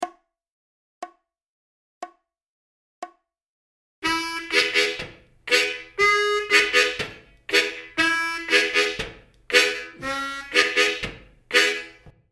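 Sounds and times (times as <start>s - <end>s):
country style vamping harmonica licks: 4.0s - 12.0s.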